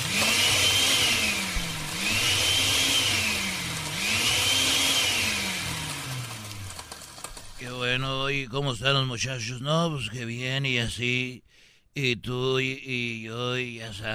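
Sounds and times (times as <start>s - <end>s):
kitchen blender whirring at home: 0.0s - 7.8s
speech: 8.5s - 14.1s.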